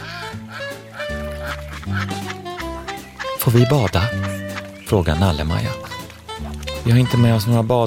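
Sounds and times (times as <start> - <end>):
flock of ducks and geese quacking and honking: 0.0 - 7.4
speech: 1.5 - 2.5, 3.4 - 5.9, 6.8 - 7.8.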